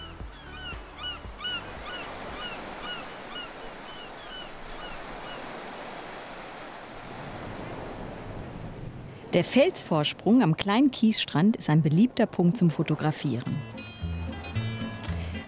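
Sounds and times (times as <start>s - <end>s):
surf washing against the shore: 1.6s - 10.0s
speech: 9.4s - 13.7s.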